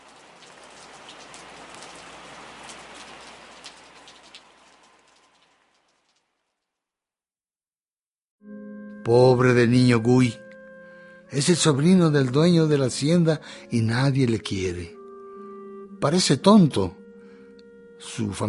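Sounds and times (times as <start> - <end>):
rain falling steadily: 0.0 - 6.8
speech: 9.0 - 10.4, 11.3 - 15.0, 16.0 - 17.0, 18.0 - 18.4.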